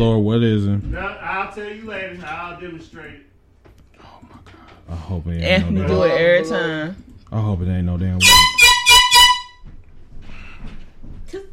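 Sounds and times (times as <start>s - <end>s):
speech: 0.0s - 3.3s, 4.0s - 8.7s
air horn blasts: 8.2s - 9.7s.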